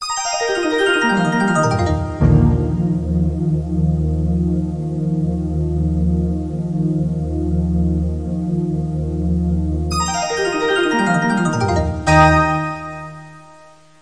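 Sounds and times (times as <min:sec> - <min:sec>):
vaporwave music: 0:00.5 - 0:13.9.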